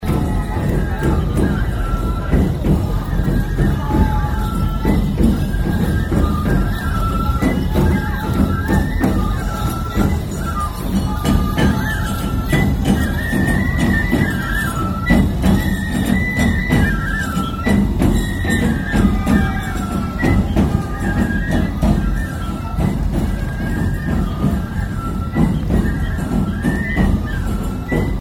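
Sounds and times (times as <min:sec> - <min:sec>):
festival drums at the Aomori Nebuta festival: 0:00.0 - 0:28.1.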